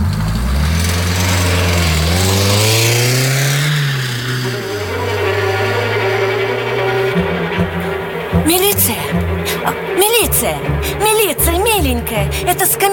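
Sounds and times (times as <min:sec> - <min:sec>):
car engine revving and accelerating through the gears: 0:00.0 - 0:12.9
steady droning hum: 0:04.0 - 0:12.9
speech: 0:10.0 - 0:12.9.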